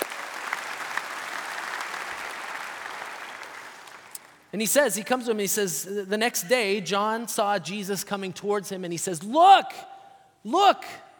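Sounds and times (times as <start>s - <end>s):
audience applause for readers: 0.0s - 4.5s
speech: 4.5s - 11.0s.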